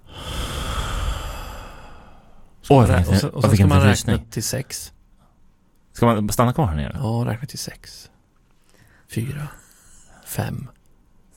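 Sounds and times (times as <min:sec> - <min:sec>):
long steady inhale through the nose: 0:00.0 - 0:02.4
speech: 0:02.7 - 0:05.0, 0:06.0 - 0:08.1, 0:09.1 - 0:09.6, 0:10.3 - 0:10.8.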